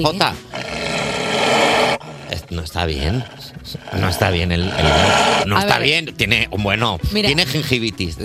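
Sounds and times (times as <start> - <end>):
speech: 0.0 - 0.7, 2.5 - 8.2
big cat roaring: 0.5 - 5.5.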